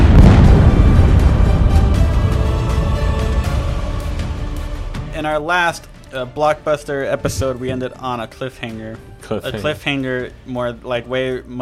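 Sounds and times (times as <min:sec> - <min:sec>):
bomb explosion sound effect: 0:00.0 - 0:05.0
speech: 0:05.3 - 0:11.5.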